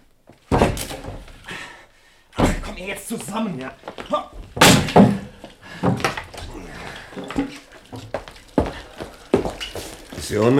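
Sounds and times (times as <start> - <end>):
wooden door being kicked in: 0.4 - 1.4, 4.3 - 6.6
speech: 2.8 - 4.4, 10.3 - 10.5.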